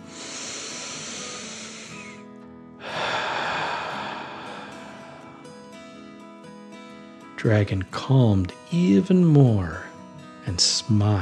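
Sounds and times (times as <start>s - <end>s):
deep breath in and out: 0.0s - 6.6s
speech: 7.4s - 9.8s, 10.4s - 11.1s.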